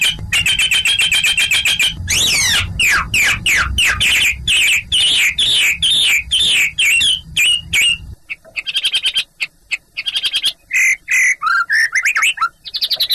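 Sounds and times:
low background rumble: 0:00.0 - 0:10.0
Chinese hwamei song of ringing whistled phrases: 0:00.0 - 0:13.1.

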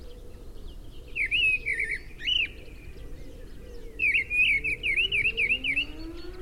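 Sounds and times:
mistle thrush delivering loud whistled phrases: 0:01.1 - 0:02.6, 0:03.8 - 0:06.4.

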